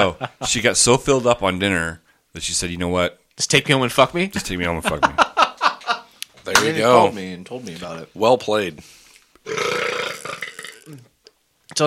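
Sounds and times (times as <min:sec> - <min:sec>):
speech: 0:00.0 - 0:05.3, 0:06.4 - 0:11.1
laughter: 0:04.8 - 0:06.1
strained croaking burp attempt: 0:09.4 - 0:11.2.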